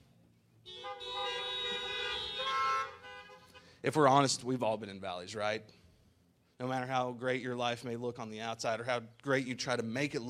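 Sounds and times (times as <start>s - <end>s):
car horns honking: 0.6s - 3.8s
speech: 3.8s - 5.8s, 6.6s - 10.2s.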